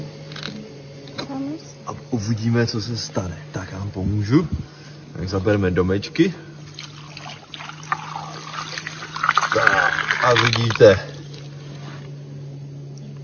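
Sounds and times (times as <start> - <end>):
speech: 2.1 - 6.5, 10.3 - 11.1
water poured over small model houses on sand and rocks to simulate a flood: 6.7 - 11.5.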